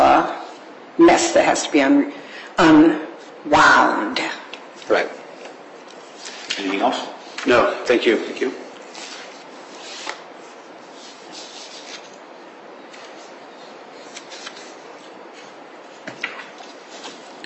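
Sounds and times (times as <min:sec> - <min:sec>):
speech: 0:01.0 - 0:05.2, 0:06.6 - 0:08.6
paper pages frantically flipped: 0:04.8 - 0:07.5, 0:08.7 - 0:12.2, 0:12.8 - 0:17.4
sharp paper crinkles and snaps: 0:08.7 - 0:12.2, 0:12.8 - 0:17.4.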